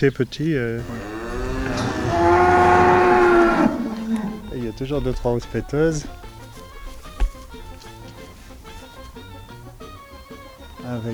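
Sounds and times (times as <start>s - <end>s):
speech: 0.0s - 1.1s, 4.7s - 6.2s, 10.9s - 11.1s
cow mooing: 0.8s - 6.4s.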